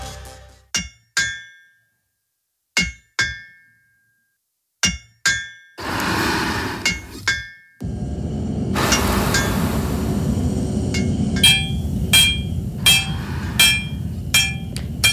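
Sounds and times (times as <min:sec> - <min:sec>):
metallic hammer strikes on iron: 0:00.7 - 0:01.7, 0:02.8 - 0:03.7, 0:04.8 - 0:05.7, 0:10.9 - 0:15.1
loud roaring rumbling background: 0:05.8 - 0:06.9, 0:07.8 - 0:15.1.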